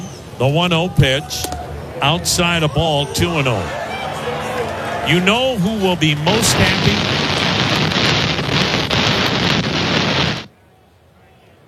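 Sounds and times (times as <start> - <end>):
speech: 0.4 - 3.8, 5.1 - 7.2
rain hiss and crackle picked up by a microphone at a baseball game: 3.1 - 10.5.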